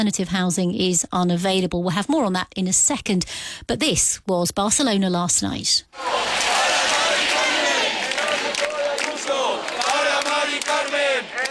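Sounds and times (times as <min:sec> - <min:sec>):
speech: 0:00.0 - 0:06.5
large crowd chanting and shouting at a street protest outdoors: 0:05.9 - 0:11.4
scattered claps: 0:06.0 - 0:11.4.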